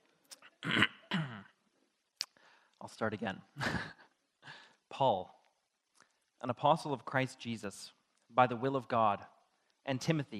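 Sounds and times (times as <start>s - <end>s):
faint throat catches: 0.3s - 1.6s
speech: 0.6s - 0.9s, 2.9s - 3.9s, 5.0s - 5.4s, 6.4s - 10.3s
person coughing after inhaling water while drinking: 0.6s - 1.6s.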